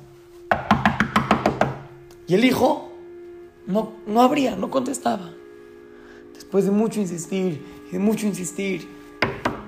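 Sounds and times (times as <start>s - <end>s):
knocking on a door: 0.5s - 1.8s, 9.2s - 9.6s
speech: 2.3s - 2.9s, 3.7s - 5.4s, 6.4s - 9.4s.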